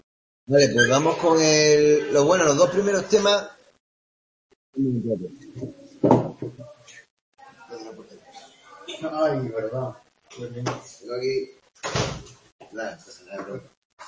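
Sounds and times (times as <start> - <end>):
speech: 0.5 - 3.6, 4.7 - 7.0, 8.9 - 14.0
brief thud: 5.6 - 6.6, 11.8 - 12.4
door pushed shut with a sharp knock: 11.8 - 12.4.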